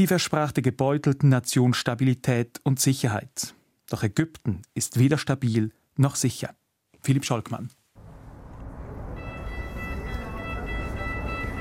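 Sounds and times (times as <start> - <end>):
speech: 0.0 - 7.8
metro train arriving in Cairo with a low rumble: 8.0 - 11.5
sustained high-pitched metro warning tone: 9.1 - 11.5.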